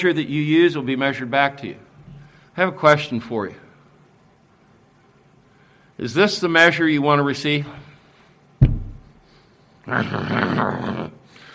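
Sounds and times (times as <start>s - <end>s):
speech: 0.0s - 1.9s, 2.6s - 3.6s, 6.0s - 7.9s, 9.8s - 11.2s
sharp thump: 8.6s - 9.2s
person growling in imitation: 9.9s - 11.2s.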